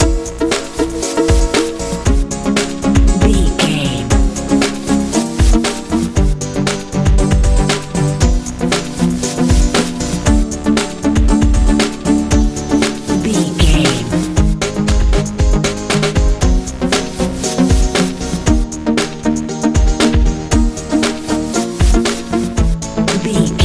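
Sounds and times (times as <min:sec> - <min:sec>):
modern dance music: 0:00.0 - 0:19.2, 0:19.8 - 0:23.6.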